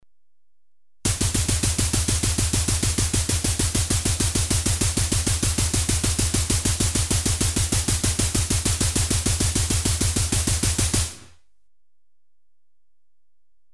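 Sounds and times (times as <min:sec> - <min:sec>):
slow electronically generated machine gun rhythm: 0:01.1 - 0:11.4.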